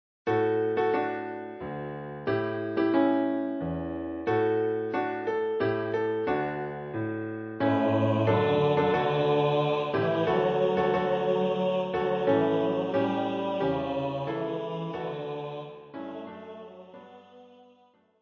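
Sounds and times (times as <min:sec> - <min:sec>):
christmas carol: 0:00.3 - 0:18.0.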